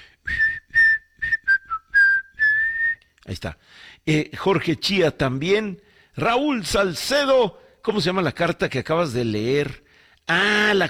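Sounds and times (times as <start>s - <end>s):
person whistling a short bright tune: 0.2s - 3.1s
speech: 3.3s - 10.8s.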